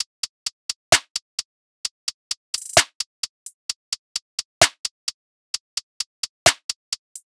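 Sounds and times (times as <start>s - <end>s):
top drum loop: 0.0s - 0.3s, 2.0s - 7.3s.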